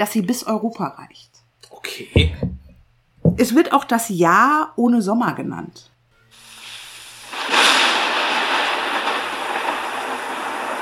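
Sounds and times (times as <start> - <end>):
speech: 0.0 - 2.6, 3.4 - 5.9
heavy rain: 6.4 - 10.8
thunder: 7.3 - 10.8.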